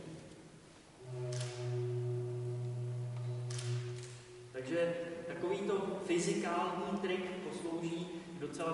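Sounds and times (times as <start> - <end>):
faint breathy hiss of air from organ pipe: 0.5 - 6.2, 7.8 - 8.6
stoppered organ pipe sounding a steady low hollow tone: 1.0 - 5.3
speech: 4.6 - 8.7.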